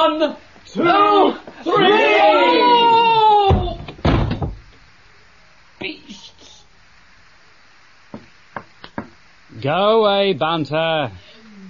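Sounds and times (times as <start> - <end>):
speech: 0.1 - 2.1, 9.6 - 11.2
person shouting during a scuffle: 0.8 - 3.9
door slammed shut during a scuffle: 3.4 - 4.7.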